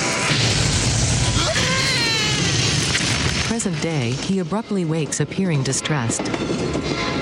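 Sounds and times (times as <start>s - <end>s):
loud explosion: 0.2s - 4.3s
speech: 3.6s - 7.2s.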